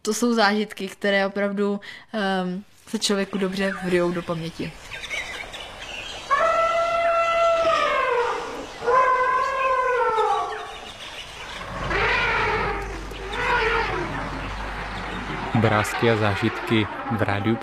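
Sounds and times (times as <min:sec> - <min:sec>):
speech: 0:00.0 - 0:05.1, 0:15.6 - 0:17.6
low rumbling noise: 0:03.0 - 0:17.6
elephants trumpeting at a waterhole: 0:05.4 - 0:17.6.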